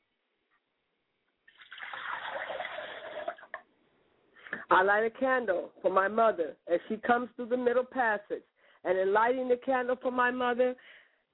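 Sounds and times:
water poured into a glass as a ritual offering: 1.5s - 3.7s
speech: 4.7s - 11.0s.

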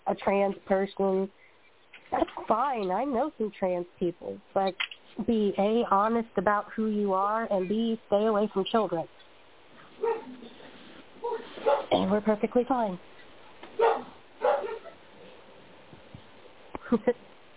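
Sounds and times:
speech: 0.1s - 1.5s, 2.1s - 9.2s, 12.1s - 13.1s, 16.9s - 17.3s
Doberman puppy barking and yelping: 10.0s - 10.4s, 11.2s - 12.0s, 13.8s - 15.0s.

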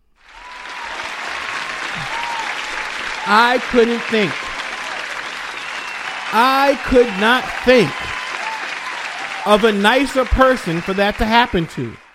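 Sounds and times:
dense applause from a sizable crowd: 0.0s - 12.1s
person shouting or whooping: 0.3s - 11.2s
laughter: 0.6s - 11.9s
speech: 3.3s - 4.4s, 6.3s - 8.2s, 9.4s - 12.0s.

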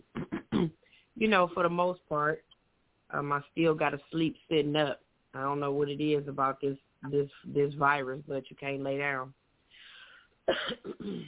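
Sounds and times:
throat-clearing hacks: 0.0s - 0.7s, 10.5s - 11.2s
speech: 1.2s - 2.5s, 3.1s - 9.4s, 10.5s - 11.2s
person coughing: 10.5s - 11.2s.

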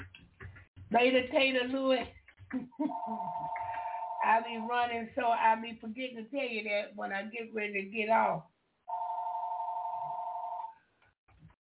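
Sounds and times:
speech: 0.9s - 3.6s, 4.2s - 8.5s
electronic telephone tone: 2.9s - 4.3s, 8.9s - 10.8s.

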